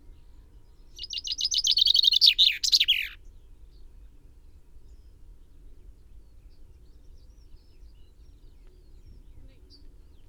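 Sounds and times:
common chaffinch Fringilla coelebs singing: 0:01.0 - 0:03.2.

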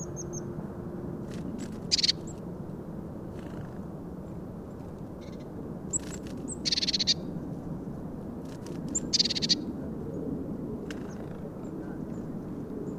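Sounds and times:
Eurasian blue tit Cyanistes caeruleus calling: 0:00.0 - 0:00.5, 0:01.9 - 0:02.4, 0:05.2 - 0:07.3, 0:08.9 - 0:09.7
constant low rumble: 0:00.0 - 0:12.9.

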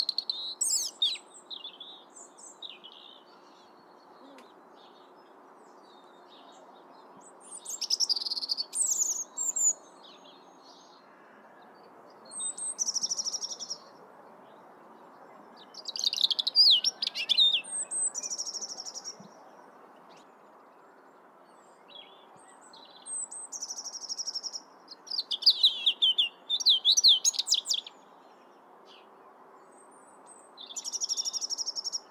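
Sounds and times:
European robin Erithacus rubecula singing: 0:00.0 - 0:06.4, 0:07.2 - 0:11.0, 0:12.3 - 0:20.4, 0:21.6 - 0:28.4, 0:30.3 - 0:32.0.

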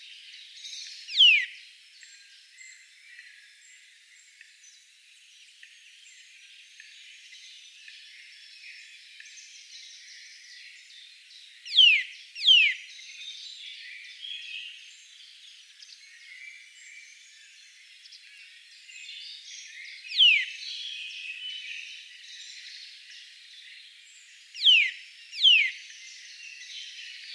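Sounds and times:
Eurasian nuthatch Sitta europaea sharp falling whistled calls: 0:01.1 - 0:01.6, 0:11.7 - 0:12.8, 0:20.1 - 0:20.5, 0:24.6 - 0:25.8.

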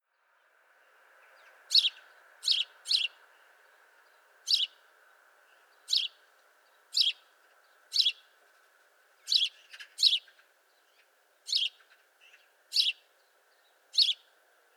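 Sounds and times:
house sparrow Passer domesticus chirping: 0:01.4 - 0:04.9, 0:05.5 - 0:08.3, 0:09.2 - 0:14.7.

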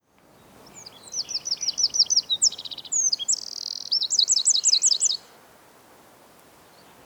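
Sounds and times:
Eurasian wren Troglodytes troglodytes singing: 0:00.6 - 0:05.2.

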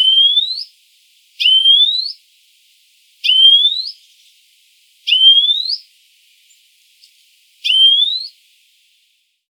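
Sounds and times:
European greenfinch Chloris chloris wheezy rising calls: 0:00.0 - 0:00.7, 0:01.4 - 0:02.2, 0:03.2 - 0:04.4, 0:06.5 - 0:08.4.

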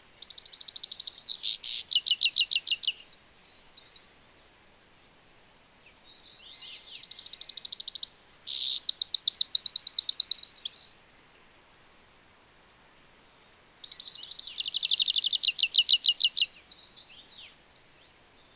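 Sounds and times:
European goldfinch Carduelis carduelis twittering: 0:00.2 - 0:03.0, 0:07.0 - 0:10.8, 0:13.8 - 0:16.5
faint bird chirps: 0:00.2 - 0:04.3, 0:05.9 - 0:11.0, 0:13.0 - 0:18.5.

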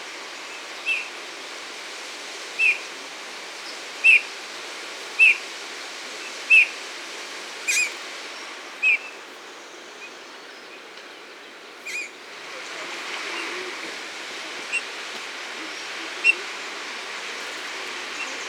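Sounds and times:
steady background hiss: 0:00.0 - 0:18.4
Eurasian bullfinch soft short piping whistles: 0:07.7 - 0:08.0, 0:11.8 - 0:12.1.

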